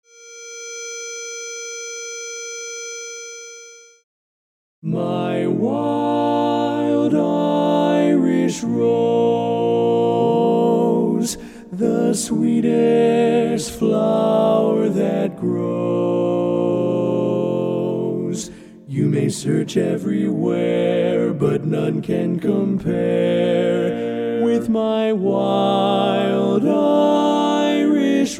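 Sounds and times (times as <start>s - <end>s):
lead vocal part of a learning track: 4.8s - 28.3s.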